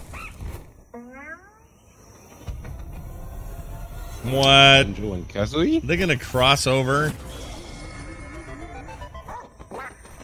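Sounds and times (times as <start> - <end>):
video game music: 1.1 - 10.2
speech: 4.2 - 7.3
cartoonish video game dog barking in short bright yelps: 9.2 - 10.2.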